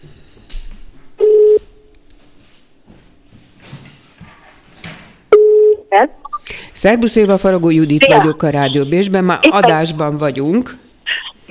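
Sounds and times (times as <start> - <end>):
telephone ringback tones on a call placed by a radio host: 1.2 - 1.6
speech: 6.8 - 10.8.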